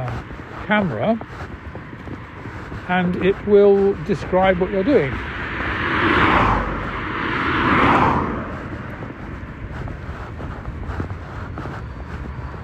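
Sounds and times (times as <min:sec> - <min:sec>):
road traffic: 0:00.0 - 0:12.6
vehicles whooshing past: 0:00.0 - 0:12.6
speech: 0:00.7 - 0:01.5, 0:02.9 - 0:05.3.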